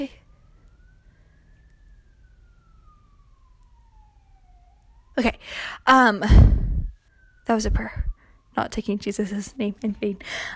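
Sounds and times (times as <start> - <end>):
speech: 0.0 - 0.2, 5.2 - 6.6, 7.5 - 10.5
faint siren wailing outside: 0.0 - 10.5
low rumble: 6.2 - 8.2.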